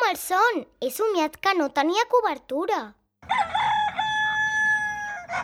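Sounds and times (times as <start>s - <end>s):
speech: 0.1s - 3.0s
rooster crowing: 3.3s - 5.4s.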